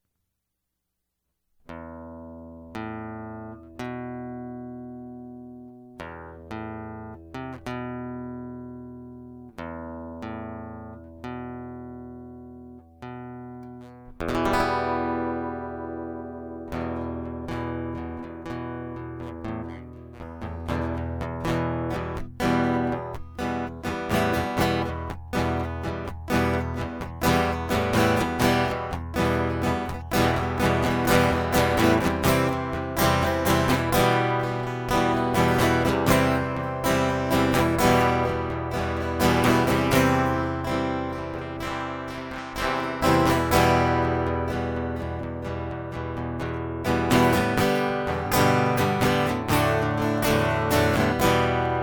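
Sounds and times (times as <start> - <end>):
guitar loop: 1.7 - 51.8.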